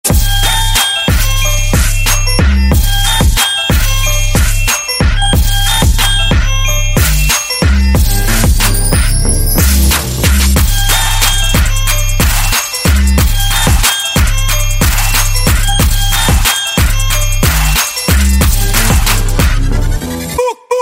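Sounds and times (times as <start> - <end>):
Christmas instrumental music ringtone: 0.0 - 20.7.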